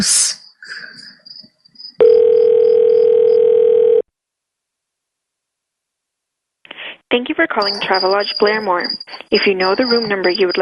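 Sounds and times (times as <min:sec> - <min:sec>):
speech: 0:00.0 - 0:00.4, 0:07.1 - 0:10.6
steady telephone tone while a call is transferred to a hotel front desk: 0:02.0 - 0:04.1.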